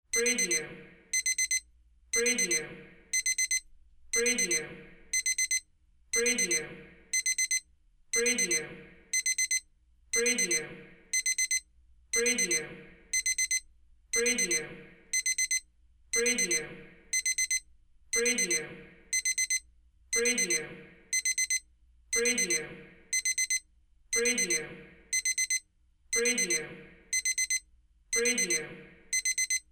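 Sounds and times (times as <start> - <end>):
timer alarm clock: 0.1 - 29.7.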